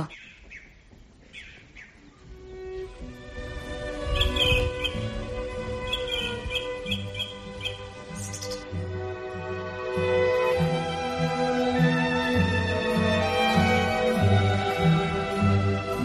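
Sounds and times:
birds chirping and twittering: 0.0s - 8.8s
sustained orchestral music: 2.2s - 16.0s.

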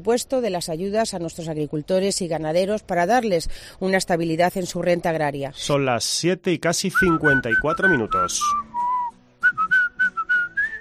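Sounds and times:
speech: 0.0s - 8.7s
person whistling a tune in a radio advert: 7.0s - 10.8s.

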